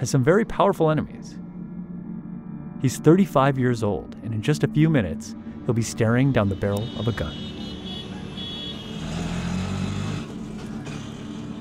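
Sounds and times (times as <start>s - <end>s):
speech: 0.0s - 1.4s, 2.8s - 7.5s
road rumble: 5.4s - 11.5s
motorized rickshaw engine drone riding through city streets: 6.6s - 11.5s.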